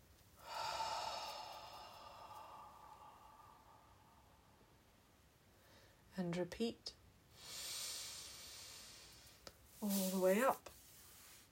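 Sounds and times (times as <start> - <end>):
long breathy exhale through the mouth: 0.4 - 4.5, 7.4 - 9.4
speech: 6.2 - 7.0, 9.8 - 10.8.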